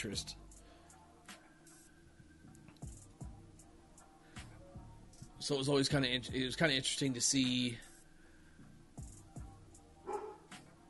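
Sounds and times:
speech: 0.0s - 0.5s, 5.4s - 7.9s
dog barking: 10.1s - 10.5s.

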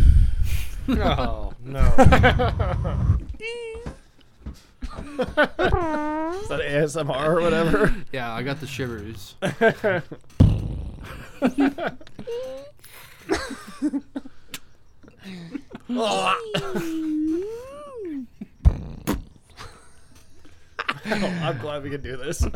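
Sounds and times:
laughter: 0.9s - 3.1s, 11.0s - 14.4s, 15.2s - 18.3s, 20.8s - 22.5s
speech: 0.9s - 14.3s, 15.2s - 18.4s, 21.0s - 22.5s
fart noises: 5.6s - 6.6s, 18.6s - 19.5s
moaning and wailing vocal sounds with sliding pitch: 5.6s - 6.6s, 16.0s - 18.3s.

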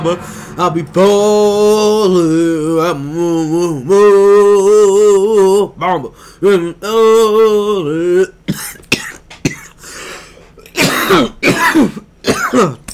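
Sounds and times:
speech: 0.0s - 8.4s, 11.1s - 12.8s
person with a dry parched throat clearing it: 8.5s - 9.8s, 10.6s - 12.9s.

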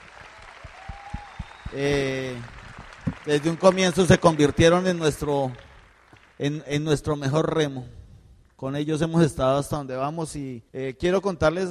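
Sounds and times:
audience applauding in a large room: 0.0s - 6.5s
speech: 1.7s - 2.6s, 3.2s - 5.6s, 6.4s - 8.0s, 8.6s - 11.6s.

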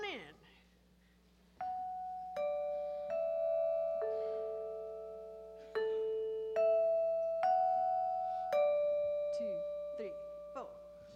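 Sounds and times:
doorbell ding-dong chime melody: 1.6s - 11.0s.

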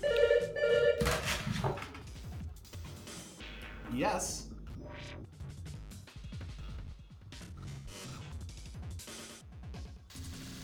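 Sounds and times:
hotel room telephone ringing with an electronic trill: 0.0s - 1.5s
rustling and clatter of handset picked up: 1.0s - 2.4s
speech: 4.0s - 4.5s.

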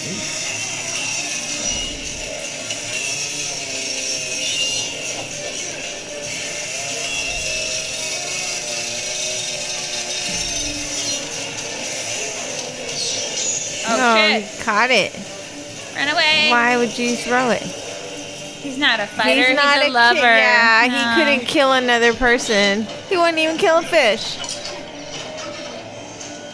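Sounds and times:
chainsaw running: 0.0s - 18.6s
speech: 14.3s - 15.3s, 16.0s - 17.8s, 18.7s - 24.4s.

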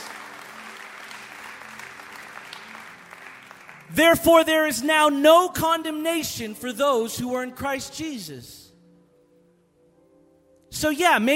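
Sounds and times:
young woman clapping hands: 0.0s - 4.0s
speech: 3.9s - 8.6s, 10.8s - 11.3s.

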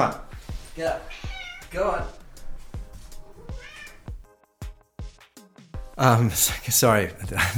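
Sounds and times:
speech: 0.0s - 0.2s, 0.8s - 2.2s, 6.0s - 7.5s
pet cat meowing loudly: 1.1s - 2.1s, 3.3s - 4.2s.

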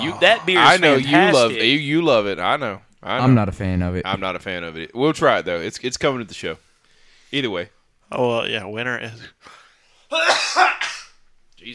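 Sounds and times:
speech: 0.0s - 6.7s, 7.3s - 10.9s
faint intake of breath: 6.6s - 7.4s
loud sneeze merging into a cough: 10.1s - 11.2s.

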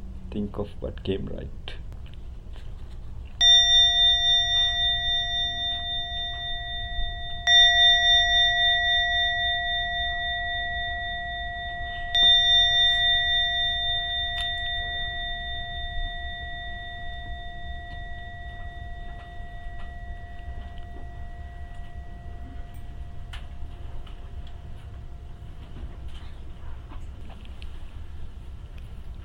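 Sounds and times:
faint low hum: 0.0s - 29.2s
speech: 0.4s - 1.8s
meditation bell struck to mark the end of a meditation session: 3.4s - 28.4s.

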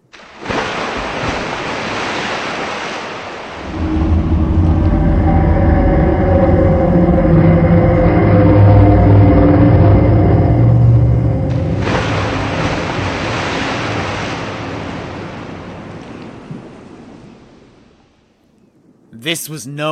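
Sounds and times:
crashing surf: 0.0s - 18.0s
wind: 0.0s - 19.9s
deep rumbling sea monster roar: 3.6s - 13.8s
speech: 19.3s - 19.9s.

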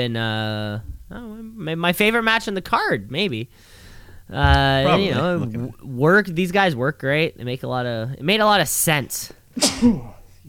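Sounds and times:
speech: 0.0s - 10.4s
person sneezing: 9.6s - 10.2s.

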